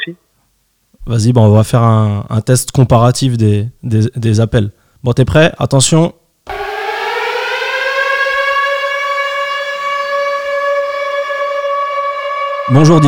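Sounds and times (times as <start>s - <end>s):
speech: 0.0s - 0.2s, 1.0s - 6.2s, 12.7s - 13.0s
civil defense siren wailing: 6.5s - 13.0s.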